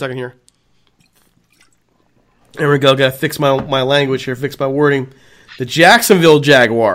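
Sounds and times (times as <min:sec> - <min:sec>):
speech: 0:00.0 - 0:00.4, 0:02.5 - 0:06.9
person sipping beer with wet slurping and mouth clicks: 0:00.5 - 0:02.6.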